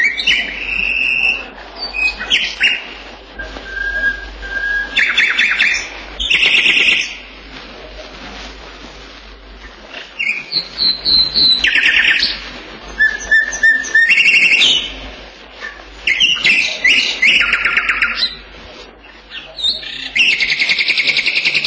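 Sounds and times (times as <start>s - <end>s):
tugai nightingale singing whistled phrases, trills and clicks: 0.0s - 7.2s, 10.2s - 15.0s, 16.0s - 18.4s, 19.0s - 21.6s.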